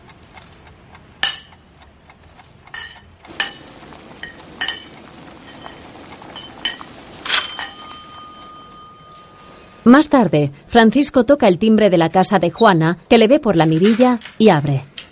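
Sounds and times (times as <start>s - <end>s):
pot lid clinking as lifted from a pot on the stove: 2.8s - 9.3s
soft steady hiss: 3.2s - 11.2s
speech: 9.9s - 14.9s.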